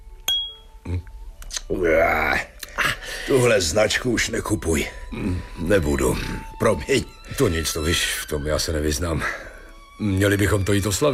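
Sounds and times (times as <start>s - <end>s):
glasses clinking in a cognac toast: 0.3s - 0.8s
speech: 1.7s - 2.5s, 3.2s - 11.1s.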